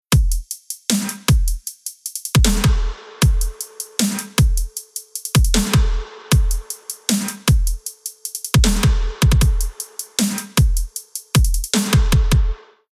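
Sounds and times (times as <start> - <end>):
future bass rhythm: 0.2 - 12.6.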